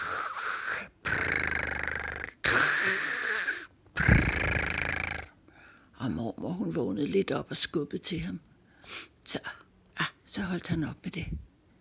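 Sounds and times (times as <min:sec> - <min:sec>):
man snoring loudly in bed: 0:00.0 - 0:05.3
speech: 0:06.0 - 0:08.5, 0:10.4 - 0:11.5.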